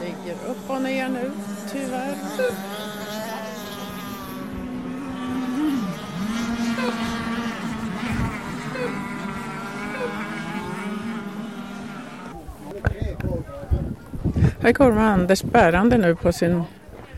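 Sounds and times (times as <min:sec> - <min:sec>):
water splashing: 0:00.0 - 0:12.3
small high-revving racing model motorboat motors whining: 0:00.0 - 0:14.2
speech: 0:00.3 - 0:03.2, 0:14.6 - 0:16.8.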